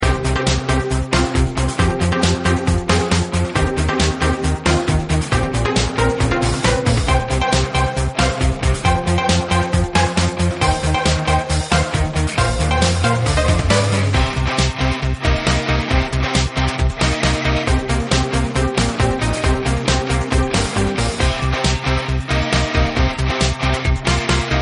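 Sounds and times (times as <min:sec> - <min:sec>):
music: 0:00.0 - 0:24.6.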